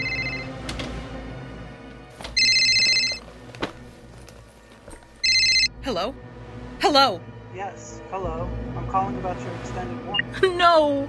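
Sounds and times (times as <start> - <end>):
cell phone ringing inside a closet: 0.0 - 0.7, 2.2 - 3.3, 5.2 - 6.1
speech: 5.9 - 6.2, 6.8 - 11.0.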